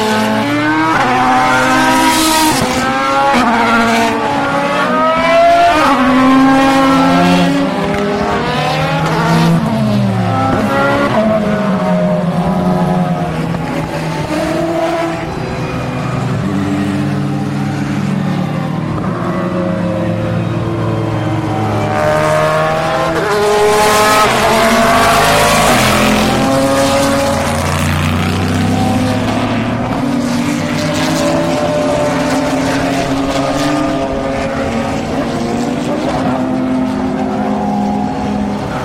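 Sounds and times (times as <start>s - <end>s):
Audi and Peugeot racing car engines roaring past at speed: 0.0s - 38.8s
faint screech of racing car tires: 0.0s - 38.8s.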